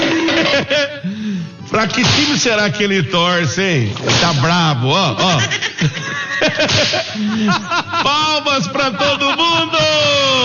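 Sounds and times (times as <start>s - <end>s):
laughter: 0.0s - 1.2s, 5.0s - 10.4s
speech: 1.8s - 10.4s
whip cracking as a man lashes a whip: 2.0s - 2.5s, 3.9s - 4.6s, 6.6s - 7.1s.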